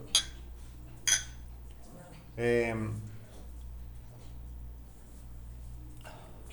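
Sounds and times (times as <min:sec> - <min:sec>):
glasses of beer clinking in a toast: 0:00.0 - 0:00.4, 0:01.1 - 0:01.4
speech: 0:02.4 - 0:03.1.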